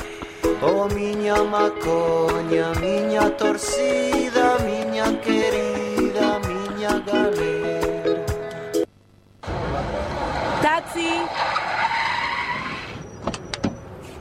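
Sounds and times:
speech: 0.6 - 7.9
car roaring past at speed: 9.4 - 13.0
tires screeching while skidding: 9.5 - 14.1.

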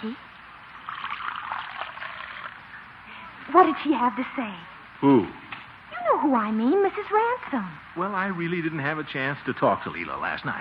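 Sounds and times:
speech: 0.0 - 0.3, 3.5 - 5.4, 6.1 - 10.5
coffee being poured into a cup: 0.8 - 2.6.

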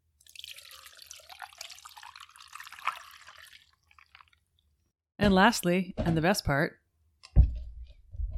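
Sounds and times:
cocktail ingredients pouring into ice shaker: 0.2 - 4.5
speech: 5.2 - 6.8.

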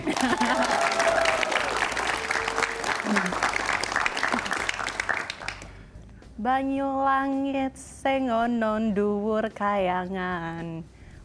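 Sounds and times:
laughter: 0.0 - 5.2
voices and cheering: 0.0 - 5.7
group of people applauding: 0.0 - 5.8
speech: 6.4 - 10.9.

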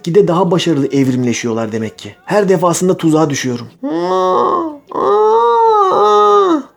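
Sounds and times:
speech: 0.0 - 5.2
person imitating the human-like moaning yowl of a cat in heat: 3.8 - 6.7.

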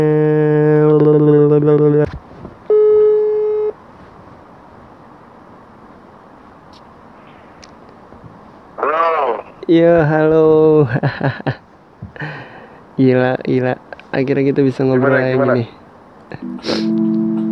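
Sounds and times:
speech: 0.0 - 0.3, 9.8 - 11.6, 13.0 - 15.8
quiet noise: 0.0 - 17.5
loud steady electronic phone tone while placing a call: 2.7 - 3.7, 16.4 - 17.5
laughter: 10.9 - 11.6, 14.7 - 17.5
brief voice: 16.4 - 16.9.

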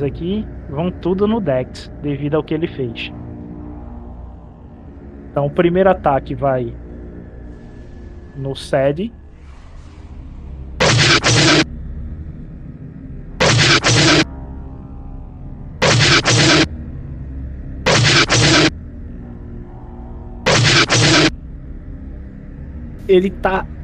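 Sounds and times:
speech: 0.0 - 3.2, 5.3 - 6.8, 8.4 - 9.2, 23.1 - 23.8
low rumbling background: 0.0 - 23.8
cannon blasts: 10.8 - 11.7, 13.4 - 14.3, 15.8 - 16.7, 17.9 - 18.7, 20.5 - 21.4.

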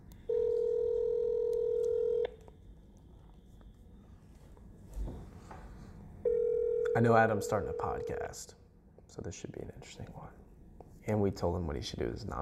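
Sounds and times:
telephone ringback tone buzzing through the line: 0.3 - 2.3, 6.3 - 8.1
speech: 7.0 - 10.4, 11.1 - 12.4.

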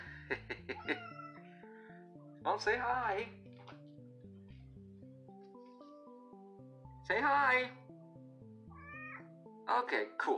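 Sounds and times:
laughter: 0.0 - 1.2
speech: 0.3 - 1.1, 2.4 - 3.4, 7.1 - 7.8, 9.7 - 10.3
cat meowing: 0.7 - 1.5, 8.7 - 9.3.

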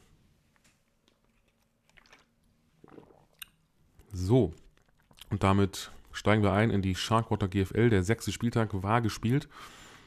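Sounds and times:
person sipping water: 1.2 - 5.4
wet mouth sounds: 1.6 - 3.6, 4.6 - 5.4
swallow: 1.8 - 3.6, 4.6 - 5.3
speech: 4.2 - 4.6, 5.3 - 9.8.

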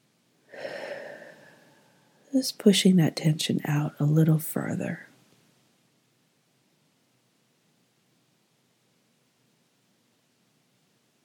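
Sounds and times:
deep breath out during a relaxation exercise: 0.5 - 2.2
speech: 2.4 - 5.1.

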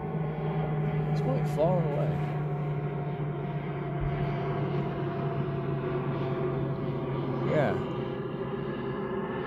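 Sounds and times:
airplane passing overhead: 0.0 - 9.4
speech: 1.2 - 2.4.

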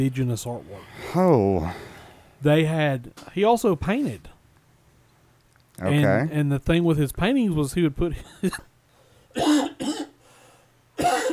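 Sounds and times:
speech: 0.0 - 4.3, 5.8 - 8.7
loud, harsh chesty cough: 9.3 - 11.3.

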